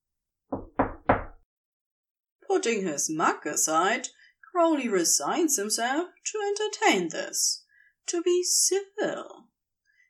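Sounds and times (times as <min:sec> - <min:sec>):
firm knocking on a wooden door: 0:00.5 - 0:01.4
speech: 0:02.5 - 0:09.5.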